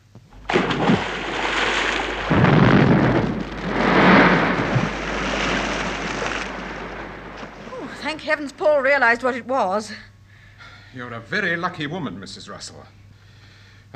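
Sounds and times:
bomb exploding in a river: 0.3 - 8.5
speech: 8.2 - 10.1, 10.9 - 13.0.

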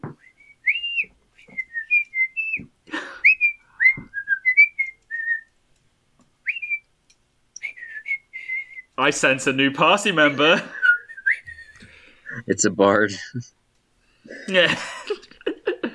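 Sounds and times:
cook whistling a lilting tune while cooking: 0.1 - 5.5, 6.5 - 6.9, 7.6 - 8.9, 10.8 - 11.8
speech: 9.0 - 10.8, 12.5 - 13.6, 14.5 - 15.2
laughter: 14.5 - 15.9.

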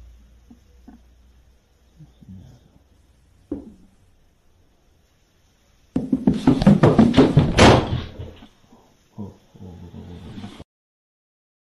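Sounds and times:
loud knocks and bangs on a door: 3.5 - 3.8, 6.0 - 8.1.

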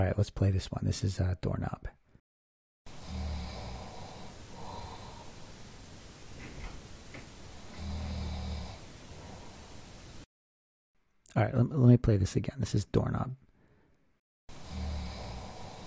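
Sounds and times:
speech: 0.0 - 2.0, 11.4 - 13.4
person snoring: 2.9 - 5.6, 7.5 - 9.9, 14.5 - 15.8
quiet breathing: 2.9 - 10.3, 13.5 - 15.8.

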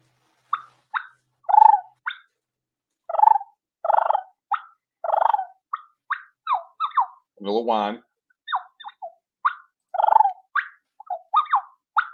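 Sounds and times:
turkey hen rolling purrs made as a hunting call: 0.5 - 2.2, 3.1 - 5.9, 8.5 - 12.1
turkey hen clucks made as a hunting call: 0.5 - 2.3, 3.1 - 7.3, 8.5 - 12.1
speech: 7.4 - 8.1.

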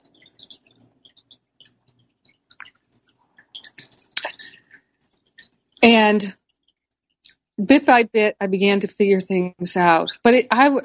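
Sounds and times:
lip smacks and mouth clicks: 0.0 - 5.7
speech: 5.8 - 6.4, 7.6 - 10.8.

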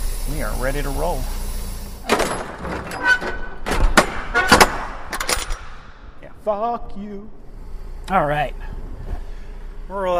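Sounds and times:
speech: 0.3 - 1.5, 2.2 - 3.4, 6.4 - 7.4, 8.1 - 8.8, 9.9 - 10.1
heavy metal trailer doors swung shut and latched: 2.0 - 5.9.

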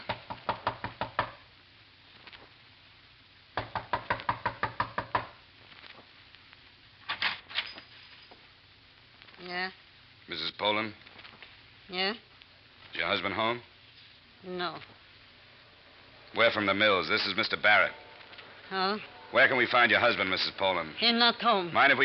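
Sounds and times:
knuckles rapping on a door: 0.0 - 1.4, 3.6 - 5.4
brief sounds: 5.4 - 7.0, 8.4 - 22.0
speech: 9.6 - 11.0, 11.9 - 12.3, 12.9 - 13.7, 14.4 - 15.0, 16.4 - 18.0, 18.7 - 22.0.

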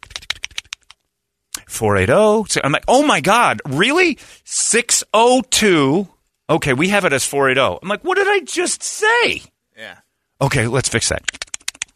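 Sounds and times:
computer keyboard tapping: 0.0 - 1.0, 11.2 - 11.9
speech: 1.7 - 11.4.

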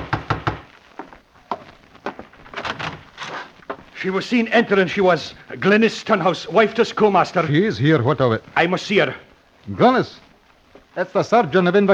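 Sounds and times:
knocking on a wooden door: 0.0 - 0.7
speech: 4.0 - 10.2, 11.0 - 11.9.

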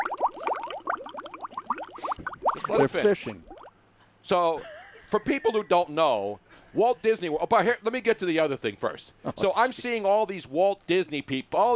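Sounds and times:
air burbling up through water: 0.0 - 3.7
speech: 2.7 - 3.5, 4.2 - 11.7.

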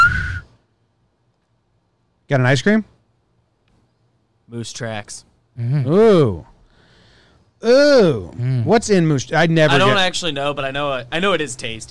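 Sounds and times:
short sharp high piercing whistle blast: 0.0 - 0.5
speech: 2.3 - 2.9, 4.5 - 6.5, 7.6 - 11.9.

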